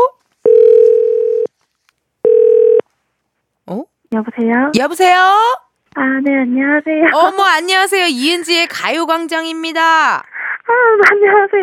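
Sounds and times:
telephone ringback tone of an outgoing call: 0.4 - 1.5, 2.2 - 2.8
speech: 3.7 - 11.6.

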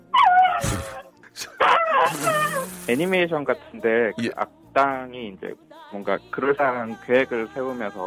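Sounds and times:
person imitating a Thai elephant trumpeting with their voice: 0.6 - 3.2
speech: 2.9 - 8.0.

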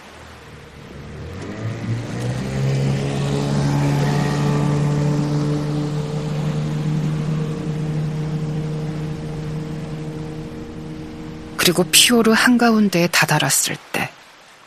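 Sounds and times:
small boat outboard motor droning at full speed in a fjord: 0.0 - 13.7
speech: 11.7 - 14.2.

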